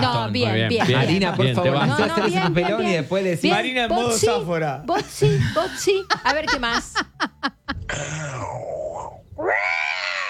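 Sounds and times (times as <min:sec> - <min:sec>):
speech: 0:00.0 - 0:07.3, 0:07.9 - 0:08.6
person imitating a big cat roar: 0:07.8 - 0:10.2.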